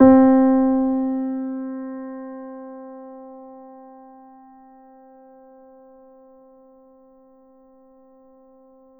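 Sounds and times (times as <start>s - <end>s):
grand piano C3 note played soft: 0.0s - 3.0s.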